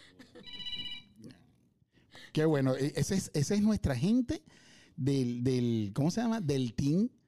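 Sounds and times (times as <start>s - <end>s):
electronic telephone ringtone: 0.5s - 1.1s
speech: 2.4s - 7.2s.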